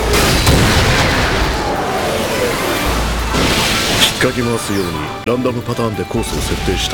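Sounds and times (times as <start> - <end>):
decoy launch roar of broadband noise: 0.0 - 5.0
speech: 4.2 - 6.9.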